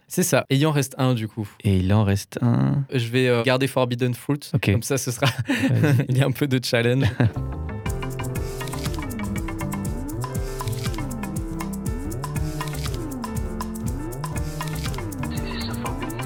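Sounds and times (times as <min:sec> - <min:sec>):
speech: 0:00.1 - 0:07.6
laughter: 0:04.6 - 0:06.2, 0:07.0 - 0:07.4, 0:15.3 - 0:16.2
recorded instrumental track with bass line and percussion: 0:07.2 - 0:16.2.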